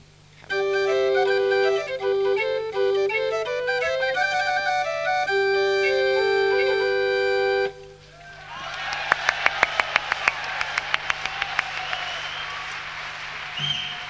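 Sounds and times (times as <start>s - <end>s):
small portative pipe organ playing a bright melody: 0.5s - 8.2s
crowd applause with sharp claps: 8.2s - 14.0s.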